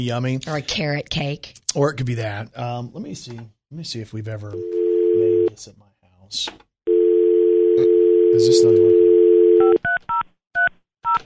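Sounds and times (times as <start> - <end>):
speech: 0.0 - 6.7, 7.8 - 9.0
telephone dial tone: 4.6 - 5.5, 6.9 - 9.8.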